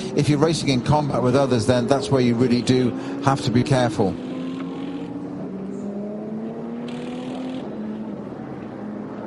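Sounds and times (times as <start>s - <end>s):
Porsche race car engine droning entering the pits: 0.0s - 9.2s
speech: 0.2s - 4.3s.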